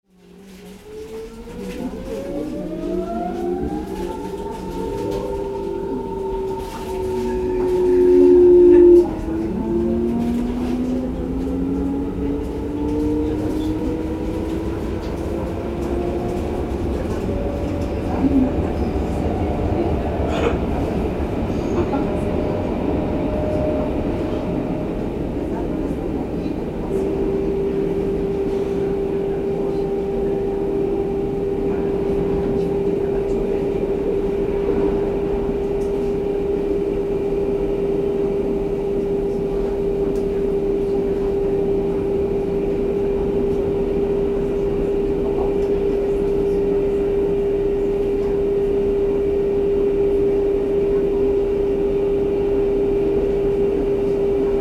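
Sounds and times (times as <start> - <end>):
suburban railway train cabin interior: 0.1 - 54.5.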